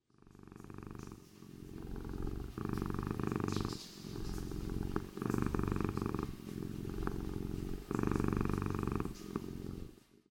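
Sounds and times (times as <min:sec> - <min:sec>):
cat purring: 0:00.0 - 0:10.2.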